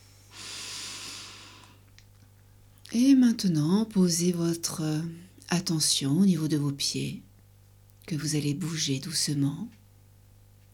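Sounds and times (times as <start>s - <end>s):
deep breath: 0.0s - 1.8s
low constant hum: 0.0s - 10.7s
speech: 2.9s - 7.3s, 8.1s - 9.8s.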